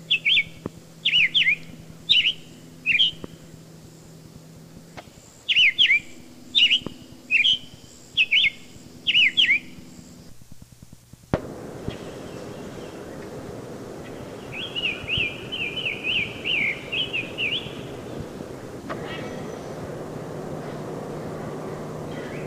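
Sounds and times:
Summer Tanager faint whistled phrases: 0.0 - 3.3, 5.5 - 9.8, 14.0 - 18.3, 18.9 - 19.9, 20.5 - 22.4
Summer Tanager sharp notes: 0.0 - 3.3, 5.5 - 9.8, 11.8 - 22.4
steady background hiss: 0.0 - 22.4.

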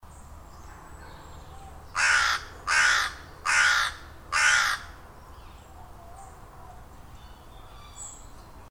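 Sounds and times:
carrion crow cawing: 2.0 - 5.0.

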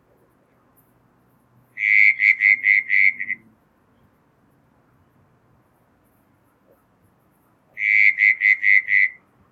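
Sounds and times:
southern brown tree frog Litoria ewingii calling: 1.7 - 3.5, 7.7 - 9.3.

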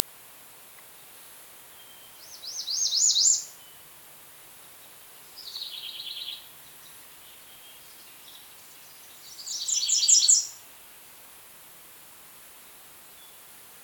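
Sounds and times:
faint hiss: 0.0 - 13.8
American redstart Setophaga ruticilla singing: 1.7 - 3.9, 4.6 - 10.7.

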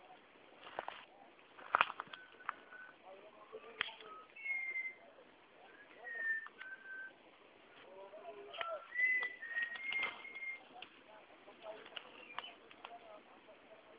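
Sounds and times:
background noise: 0.0 - 13.9
Malabar whistling thrush faint whistled notes: 4.0 - 7.2, 8.6 - 10.6, 12.1 - 12.6.

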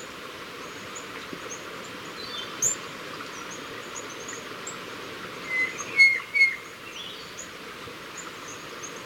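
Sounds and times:
constant background hiss: 0.0 - 9.0
white-bellied antpitta Grallaria hypoleuca whistles: 5.5 - 6.6.

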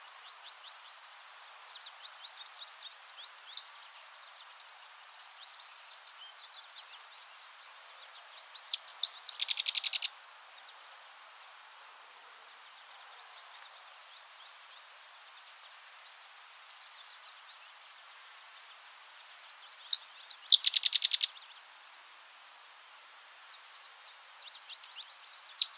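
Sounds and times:
Sedge wren Cistothorus stellaris song: 1.7 - 10.8, 19.6 - 21.7, 23.6 - 25.7
faint Sedge wren chattering: 8.2 - 10.1, 19.9 - 21.3, 24.8 - 25.7.

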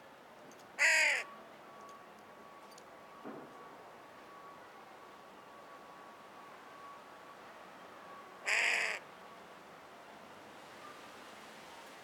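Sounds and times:
faint steady tone: 0.0 - 12.0
Carrion crow cawing: 0.8 - 1.3, 8.5 - 9.0.

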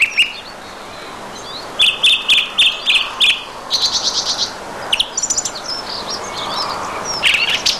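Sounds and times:
song thrush singing repeated phrases: 0.0 - 7.7.

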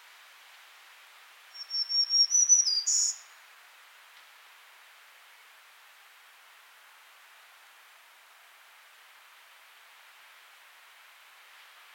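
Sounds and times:
soft hiss: 0.0 - 11.9
Setophaga virens black-throated green warbler high buzzy song: 1.5 - 3.4.

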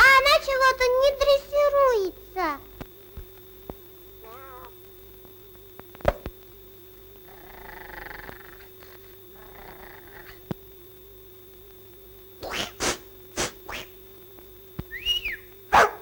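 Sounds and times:
low electrical hum: 0.0 - 16.0
cat meowing: 4.2 - 4.7
cat purring: 7.3 - 10.4.

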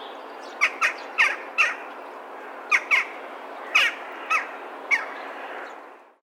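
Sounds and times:
Western jackdaw tchak calls: 0.6 - 1.9, 2.7 - 5.2.

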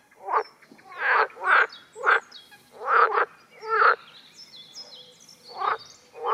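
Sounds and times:
water frog croaks: 0.2 - 4.1, 5.5 - 6.3.

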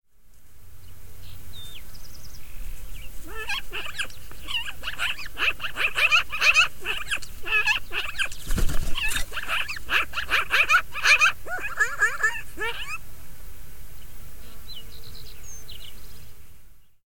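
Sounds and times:
black-billed magpie Pica hudsonia calling in Yellowstone: 3.2 - 13.0.

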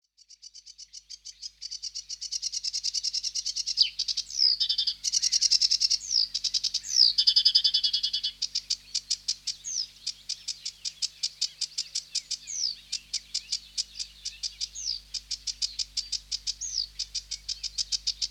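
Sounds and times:
sedge warbler Acrocephalus schoenobaenus singing: 2.8 - 18.2.

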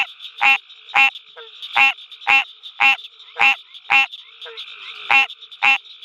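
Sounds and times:
green tree frog Hyla cinerea giving nasal bell-like quonks: 0.0 - 5.8.

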